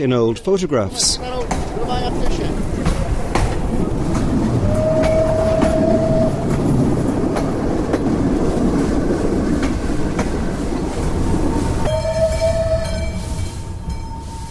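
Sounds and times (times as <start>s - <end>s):
speech: 0.0s - 2.6s
passenger train rolling along rails through the countryside: 0.0s - 14.4s
train wheels clacking over track joints: 0.9s - 13.3s
passenger train whistle blasts: 4.6s - 6.5s, 11.6s - 14.4s.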